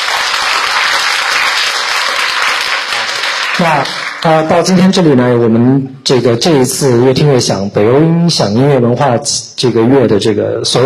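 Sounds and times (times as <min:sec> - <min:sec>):
enthusiastic audience applause: 0:00.0 - 0:04.3
speech: 0:03.6 - 0:10.8.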